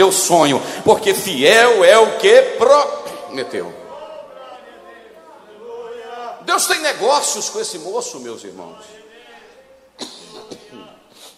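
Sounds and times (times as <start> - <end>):
speech: 0.0 - 3.8, 6.5 - 9.0
person coughing in short harsh bursts: 10.0 - 10.8.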